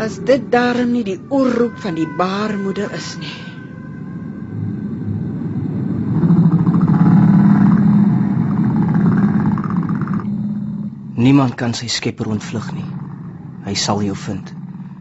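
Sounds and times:
speech: 0.0 - 3.5, 11.2 - 13.0, 13.7 - 14.6
deep continuous roar of the sea: 0.0 - 14.9.

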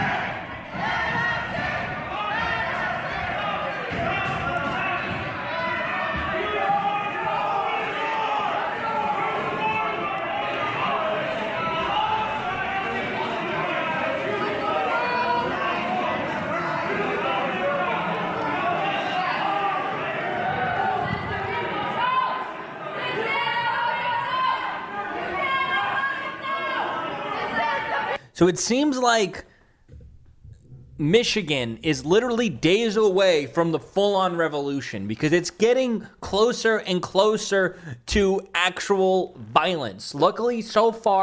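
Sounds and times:
dense crowd of protesters shouting and chanting against a lockdown: 0.0 - 28.2
speech: 28.4 - 29.5, 31.0 - 41.2.

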